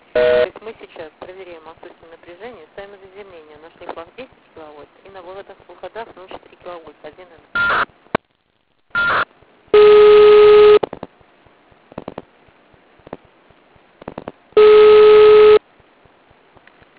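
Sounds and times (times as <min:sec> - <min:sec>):
telephone line tones after a dropped call: 0:00.2 - 0:00.5, 0:07.6 - 0:07.8, 0:09.0 - 0:09.2, 0:09.8 - 0:10.8, 0:14.6 - 0:15.6
speech: 0:00.2 - 0:08.0.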